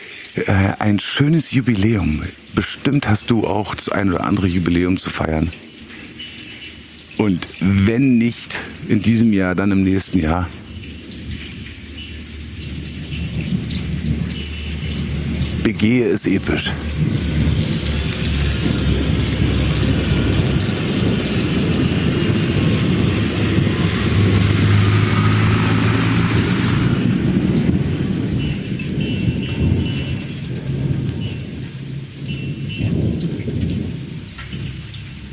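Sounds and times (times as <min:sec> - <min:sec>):
steady hissing rainfall: 0:00.0 - 0:35.3
speech: 0:00.4 - 0:05.7, 0:07.2 - 0:10.6, 0:15.7 - 0:17.2
deep thunder rumbling: 0:09.6 - 0:35.3
tractor engine running: 0:12.6 - 0:29.8.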